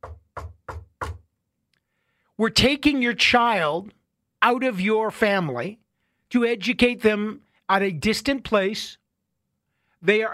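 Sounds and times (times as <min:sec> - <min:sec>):
firm knocking on a door: 0:00.0 - 0:01.3
speech: 0:02.4 - 0:09.0, 0:10.0 - 0:10.3.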